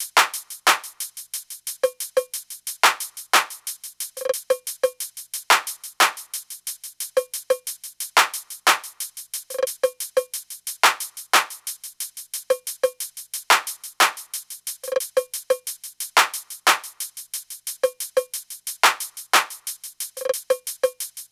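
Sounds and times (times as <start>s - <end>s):
percussion drum loop at 90 BPM: 0.0s - 21.3s.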